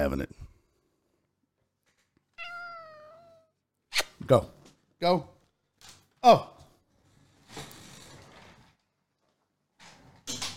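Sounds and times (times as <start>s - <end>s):
speech: 0.0s - 0.5s, 4.3s - 5.3s, 6.2s - 6.5s
cat meowing: 2.4s - 3.5s.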